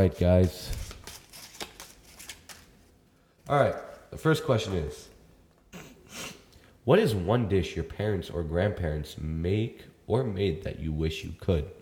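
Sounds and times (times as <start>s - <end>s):
speech: 0.0s - 0.8s, 3.5s - 5.1s, 6.9s - 11.7s
broken playing cards being shuffled: 0.4s - 2.9s.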